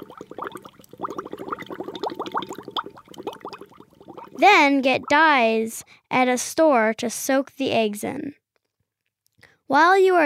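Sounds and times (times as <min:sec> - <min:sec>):
water boiling hard in a pot of eggs: 0:00.0 - 0:05.3
rapid bubbling pops and gurgles of boiling water: 0:00.0 - 0:05.5
speech: 0:04.4 - 0:08.4, 0:09.7 - 0:10.2.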